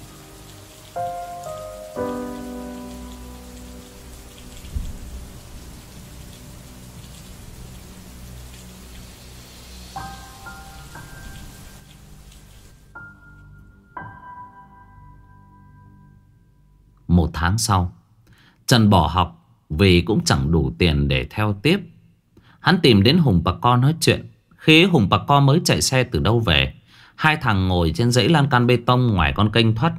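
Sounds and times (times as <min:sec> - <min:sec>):
rain falling outside: 0:00.0 - 0:13.4
speech: 0:01.0 - 0:01.2, 0:17.4 - 0:18.0, 0:18.7 - 0:21.9, 0:22.6 - 0:29.9.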